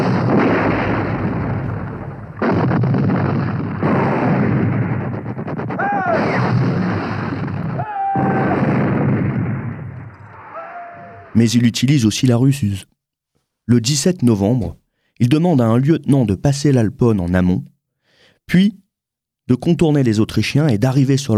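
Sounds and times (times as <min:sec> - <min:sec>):
artillery bombardment beside the Adige: 0:00.0 - 0:11.4
speech: 0:11.4 - 0:13.0, 0:13.7 - 0:17.7, 0:18.5 - 0:18.8, 0:19.5 - 0:21.3.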